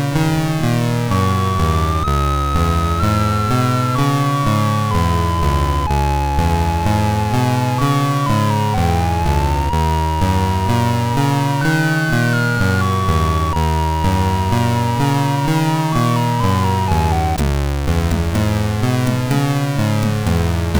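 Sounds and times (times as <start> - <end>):
chiptune music from a SID MOS6581R2 chip: 0.2 - 20.6.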